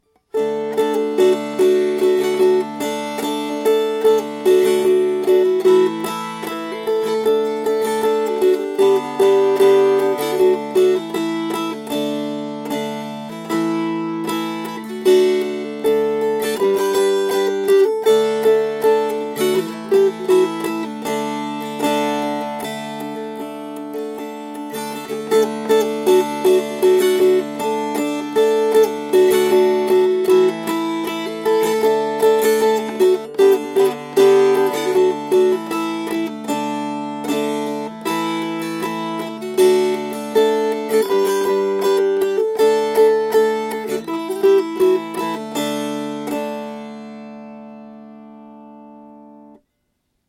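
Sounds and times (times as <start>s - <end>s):
strumming: 0.0s - 49.7s.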